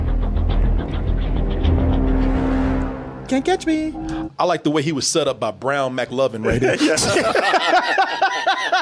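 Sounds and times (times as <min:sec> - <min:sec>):
car engine roaring in a car chase: 0:00.1 - 0:04.3
speech: 0:03.3 - 0:08.8
laughter: 0:06.4 - 0:08.8.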